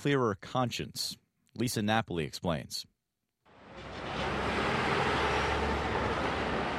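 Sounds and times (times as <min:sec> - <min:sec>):
speech: 0:00.0 - 0:02.9
constant low rumble of city street traffic: 0:03.5 - 0:06.7
passing cars on a New York City street: 0:03.5 - 0:06.7.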